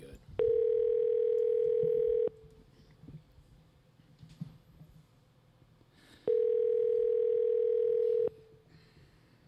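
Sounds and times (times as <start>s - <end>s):
telephone line tone while calling someone: 0.4s - 2.4s, 6.3s - 8.4s.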